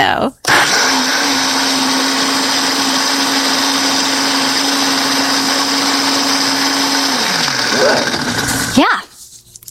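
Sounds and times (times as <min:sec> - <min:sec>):
blender blending rolled oats: 0:00.4 - 0:08.9.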